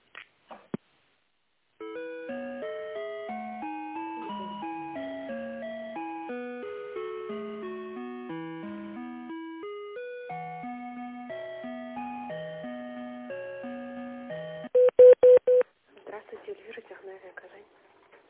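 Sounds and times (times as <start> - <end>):
simple electronic melody of stepped tones during a telephone call transfer: 1.8 - 15.6
telephone dial-pad beeps: 14.6 - 15.6.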